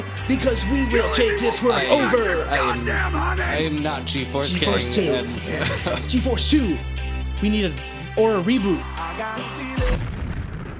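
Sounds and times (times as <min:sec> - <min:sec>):
speech: 0:00.3 - 0:09.6
laughter: 0:01.2 - 0:02.8, 0:04.5 - 0:06.8
loud booming explosion with deep thump and rumbling tail: 0:10.0 - 0:10.7.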